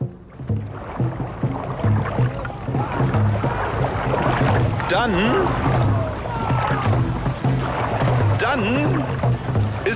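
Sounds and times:
outdoor noise at a dragon boat festival on a town pond: 0.0 - 9.9
steady low rhythmic beats at a dragon boat festival: 0.0 - 9.9
busy wash of voices at a dragon boat festival on a town pond: 2.2 - 9.3
speech: 4.9 - 5.8, 8.5 - 9.2.

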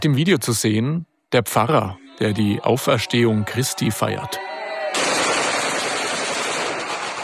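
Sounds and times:
speech: 0.0 - 4.5
rapid celebratory gunfire shot into the air: 5.0 - 7.2.

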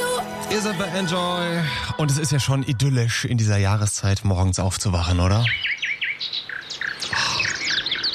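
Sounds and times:
speech: 0.5 - 6.4
birds chirping outside in the morning: 4.4 - 8.1.

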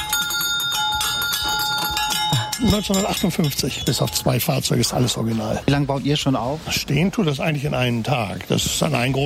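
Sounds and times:
original 1950s fire engine bell on a carousel ringing: 0.0 - 4.8
speech: 2.6 - 9.2.

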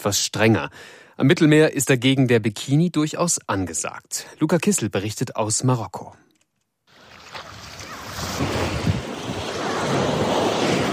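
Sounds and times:
speech: 0.0 - 6.3, 8.2 - 8.8
ocean waves rolling onto the beach of Bousnika, Morocco: 6.9 - 10.9
wind rumble buffeting the microphone: 8.1 - 10.9.

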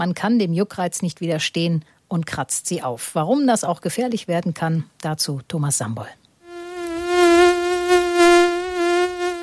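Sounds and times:
speech: 0.0 - 6.2
mosquito whining in flight: 6.4 - 9.4.

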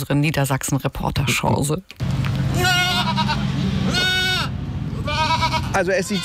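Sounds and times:
speech: 0.0 - 2.8, 5.8 - 6.2
steady low rumble of noise: 2.0 - 5.8
goats bleating in zoo enclosure: 2.4 - 6.2.

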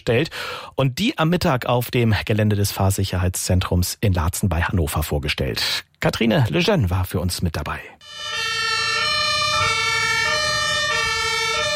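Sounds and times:
speech: 0.0 - 8.3
ambulance, fire brigade and police sirens wailing on a road during a demonstration: 8.0 - 11.7.

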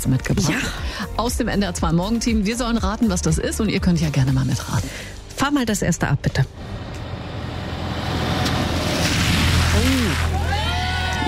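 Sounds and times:
speech: 0.0 - 6.8
truck or other large vehicle rumbling past: 6.5 - 10.4
low truck engine hum: 6.5 - 10.5
water spraying from a deep roadside puddle: 7.4 - 10.5.

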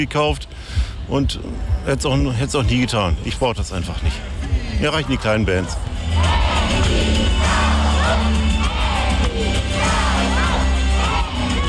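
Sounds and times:
speech: 0.0 - 5.9
large crowd of children cheering and shouting at a children's concert: 6.0 - 11.6.

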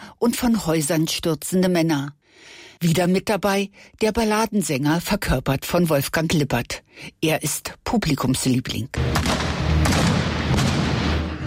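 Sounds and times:
speech: 0.2 - 10.1
bombard cannon firing balls into water during a staged theatre spectacle: 9.1 - 11.3.

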